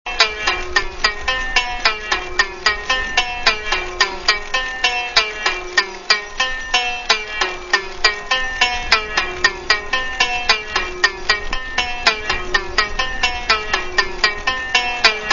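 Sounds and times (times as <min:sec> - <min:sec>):
valiha: 0:00.1 - 0:15.3.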